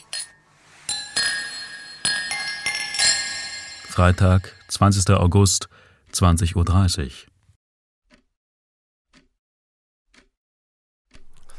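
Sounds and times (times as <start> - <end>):
glasses clinking in a toast: 0.0 - 4.8
speech: 4.0 - 7.3.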